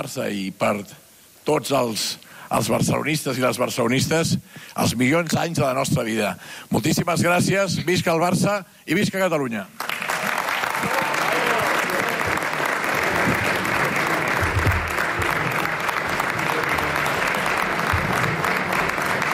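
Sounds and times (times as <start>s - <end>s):
speech: 0.0s - 10.0s
large audience applauding in an indoor hall after a speech: 9.8s - 19.3s.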